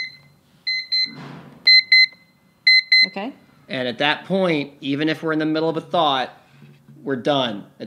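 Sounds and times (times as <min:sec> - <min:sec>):
visual countdown timer alarm chirping electronic beeps: 0:00.0 - 0:03.3
speech: 0:03.0 - 0:06.4, 0:07.0 - 0:07.8.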